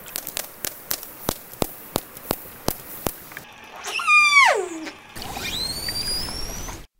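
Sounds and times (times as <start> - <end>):
orca echolocation clicks: 0.0 - 3.5
hissing underwater background: 0.0 - 6.9
orca harmonic whistling call: 3.4 - 6.9
orca high rising squeal: 3.5 - 6.9.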